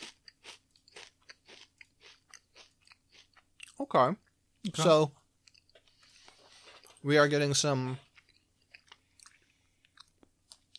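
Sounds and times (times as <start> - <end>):
brittle food being bitten and chewed: 0.0 - 3.8, 5.4 - 7.0, 8.0 - 10.7
speech: 3.8 - 5.2, 7.0 - 8.0.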